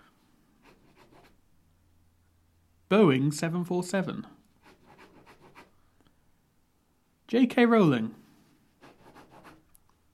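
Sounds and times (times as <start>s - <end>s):
pen scribbling on paper list: 0.6s - 1.4s, 4.6s - 5.7s, 8.8s - 9.6s
speech: 2.9s - 4.4s, 7.3s - 8.2s.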